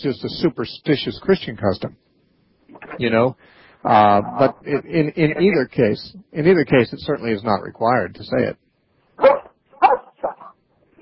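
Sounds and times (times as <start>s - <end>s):
speech: 0.0s - 2.1s, 2.9s - 8.6s
dog barking: 9.2s - 10.6s.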